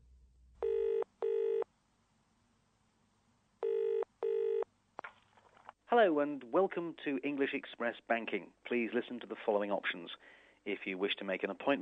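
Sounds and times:
double-ring telephone ringing tone on the line: 0.6 - 1.7, 3.6 - 4.7
speech: 5.9 - 11.7.

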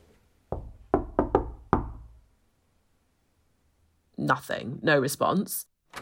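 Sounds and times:
knocking on a wooden door: 0.5 - 2.2
speech: 4.2 - 6.0.

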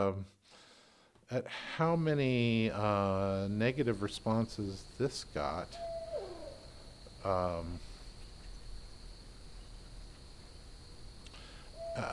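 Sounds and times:
speech: 0.0 - 0.6, 1.3 - 5.9, 7.2 - 7.9
crickets chirping: 1.6 - 12.1
owl hooting: 5.6 - 7.0, 11.4 - 12.1.

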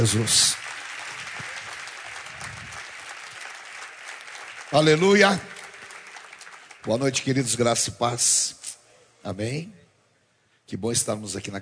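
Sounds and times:
speech: 0.0 - 0.6, 4.7 - 5.5, 6.8 - 8.6, 9.2 - 9.8, 10.7 - 11.6
large crowd applauding a speaker: 0.0 - 7.6.

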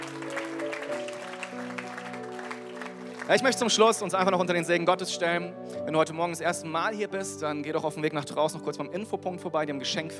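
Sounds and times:
audience applauding: 0.0 - 4.3
speech: 3.3 - 10.1.

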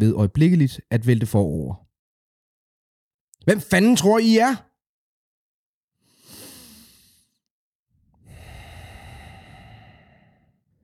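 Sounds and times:
speech: 0.0 - 1.9, 3.4 - 4.7
deep breath drawn in a tense moment: 6.0 - 7.4, 8.0 - 10.8.

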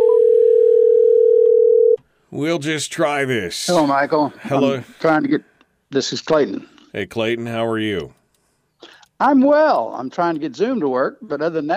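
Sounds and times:
telephone dial tone while placing a phone call: 0.0 - 2.0
speech: 2.4 - 8.2, 8.8 - 11.7.

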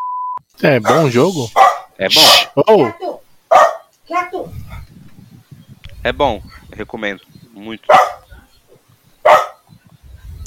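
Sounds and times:
speech: 0.6 - 4.6, 6.0 - 8.2
dog barking: 0.8 - 4.8, 7.9 - 8.5, 9.2 - 9.7
faint low rumbling noise: 4.4 - 7.6, 9.8 - 10.4.

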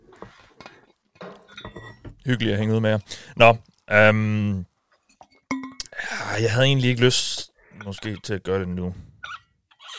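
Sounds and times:
light clatter of tableware: 1.2 - 2.2
glasses clinking in a toast: 1.4 - 2.1, 5.2 - 5.9
speech: 2.3 - 4.7, 6.3 - 9.1.

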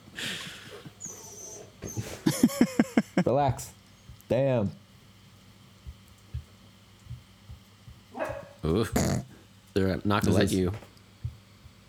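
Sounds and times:
dog whimpering: 0.7 - 2.4, 8.2 - 9.2
laughter: 2.2 - 3.4
speech: 3.3 - 4.8, 8.7 - 10.9.

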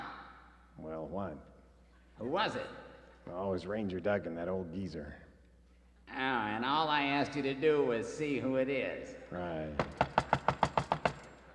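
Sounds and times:
speech: 1.1 - 1.6, 2.2 - 5.2, 6.1 - 10.0
knocking on a door: 9.8 - 11.3.

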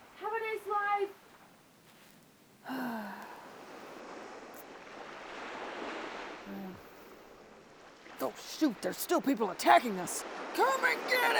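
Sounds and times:
ocean waves seen from a ship at sea: 0.0 - 11.3
short voiced gasps: 2.6 - 3.5
speech: 8.2 - 11.3.

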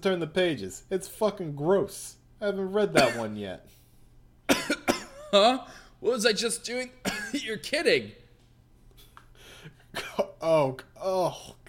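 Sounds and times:
speech: 0.0 - 3.8, 5.3 - 8.2, 10.4 - 11.6
harsh coughing: 3.0 - 3.4, 4.5 - 5.6, 7.0 - 7.5, 9.6 - 10.4.

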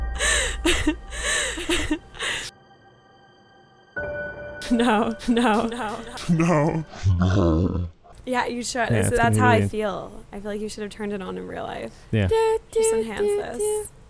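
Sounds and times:
laughter: 0.2 - 2.5, 4.7 - 6.9, 8.9 - 9.7
person imitating quick heavy panting: 0.2 - 2.5
speech: 0.6 - 2.0, 4.7 - 13.9.

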